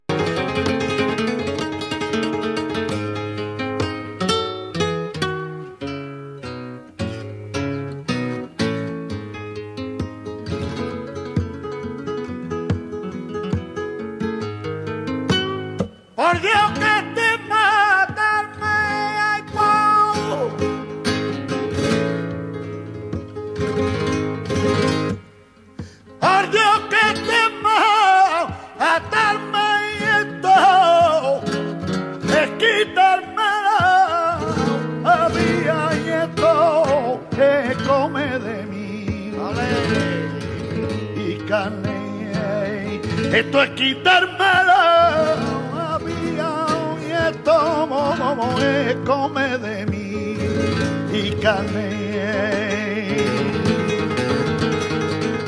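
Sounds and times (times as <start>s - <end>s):
guitar playing a soleá: 0.0s - 55.4s
person singing a soleá: 16.2s - 20.8s, 26.2s - 53.7s.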